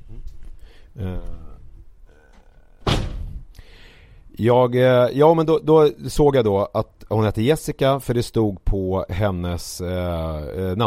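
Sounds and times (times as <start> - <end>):
speech: 1.0 - 1.5, 4.3 - 10.8
person making vocal sound: 1.0 - 1.7
door shutting with a loud thump: 2.3 - 3.5.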